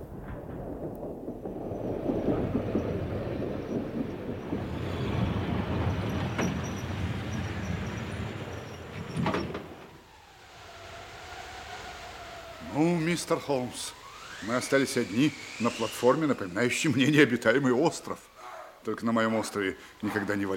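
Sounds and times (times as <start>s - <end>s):
train rumbling as it pulls into a station: 0.0s - 18.3s
door-like clatter: 2.6s - 10.0s
speech: 13.1s - 20.5s.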